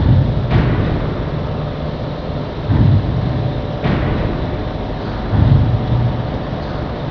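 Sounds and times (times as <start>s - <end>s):
industrial pounder: 0.0s - 7.0s.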